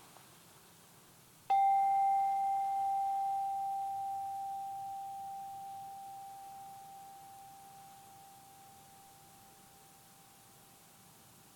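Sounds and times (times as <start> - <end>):
meditation bell struck at the end of a meditation: 1.5 - 10.6.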